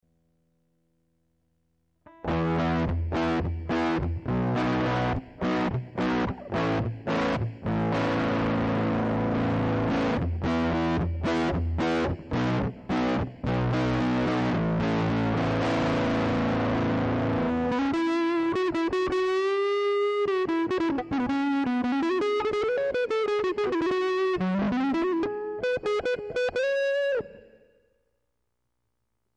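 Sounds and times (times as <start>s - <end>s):
F fuzz tone: 2.1s - 28.0s.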